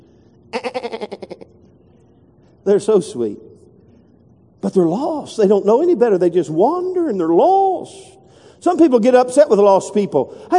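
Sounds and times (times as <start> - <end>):
sheep bleating: 0.5 - 1.5
speech: 2.6 - 3.5, 4.6 - 10.5.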